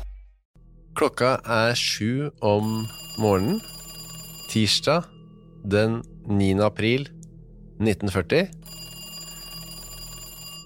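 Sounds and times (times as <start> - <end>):
speech: 1.0 - 3.7, 4.5 - 7.2, 7.8 - 8.7
telephone ringing: 2.6 - 5.2, 8.6 - 10.6.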